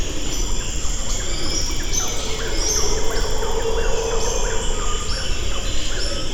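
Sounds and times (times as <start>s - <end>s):
dry forest ambience at Colosó primate station in Sucre: 0.2s - 6.2s.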